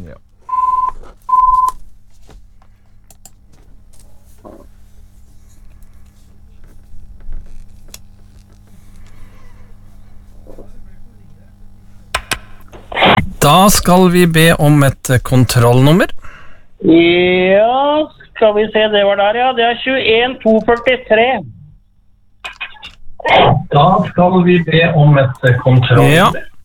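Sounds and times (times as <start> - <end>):
speech: 0.1 - 0.3, 13.4 - 16.2, 16.8 - 21.5, 23.2 - 26.5
electronic telephone ring tones: 0.5 - 1.8.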